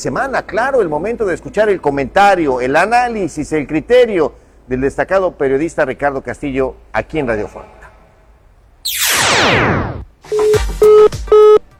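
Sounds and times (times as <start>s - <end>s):
speech: 0.0s - 7.8s, 8.8s - 11.2s
falling electronic telephone sweep after a dropped phone call: 8.8s - 10.5s
short telephone beeps after a dropped phone call: 10.3s - 11.7s.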